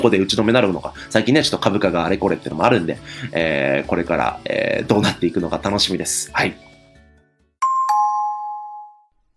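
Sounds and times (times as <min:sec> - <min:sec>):
speech: 0:00.0 - 0:06.7
two-note ding-dong chime transition jingle: 0:07.6 - 0:09.1.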